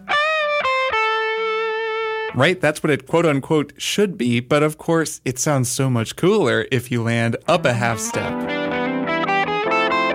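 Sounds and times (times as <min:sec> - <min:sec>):
electric guitar riff played with heavy distortion: 0:00.0 - 0:02.5, 0:07.5 - 0:10.1
speech: 0:02.4 - 0:08.8.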